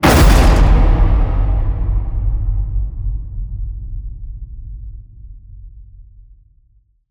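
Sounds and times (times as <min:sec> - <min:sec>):
cinematic metal crash hit: 0:00.0 - 0:04.2.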